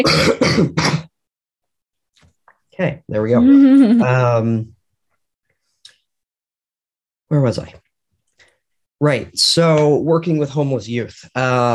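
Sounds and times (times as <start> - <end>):
speech: 0.0 - 1.0, 2.8 - 4.8, 7.3 - 7.8, 9.0 - 11.7
person coughing and clearing throat: 0.0 - 1.2.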